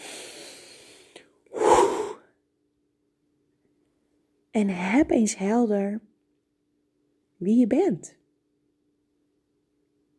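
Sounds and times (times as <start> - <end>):
deep breathing in and out: 0.0 - 2.3
speech: 4.6 - 6.1, 7.4 - 8.2.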